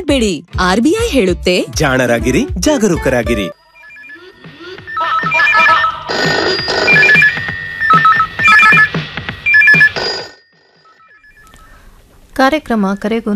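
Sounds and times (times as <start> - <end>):
speech: 0.0 - 3.6, 12.4 - 13.3
telephone electronic ringtone with an incoming call: 3.4 - 12.0.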